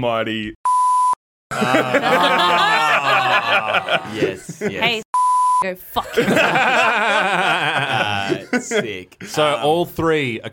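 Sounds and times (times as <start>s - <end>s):
speech: 0.0s - 0.6s, 1.5s - 5.0s, 5.6s - 10.5s
censor bleep over a spoken word: 0.7s - 1.2s, 5.2s - 5.7s
people laughing and chattering: 1.5s - 5.0s, 6.2s - 9.5s.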